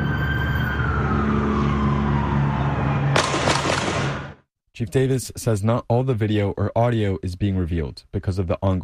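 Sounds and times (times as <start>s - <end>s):
faint wailing siren: 0.0s - 3.3s
steady road noise: 0.0s - 4.5s
gunshots through a car passenger-side window at a traffic stop: 3.1s - 4.4s
speech: 4.8s - 8.8s.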